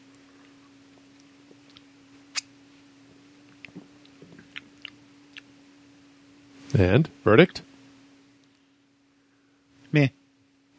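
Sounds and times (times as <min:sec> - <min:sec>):
low steady hum: 0:00.0 - 0:10.7
mouth clicks and lip smacks of someone tasting a fizzy drink: 0:01.2 - 0:02.6, 0:03.5 - 0:05.5
speech: 0:06.8 - 0:07.7, 0:10.0 - 0:10.2.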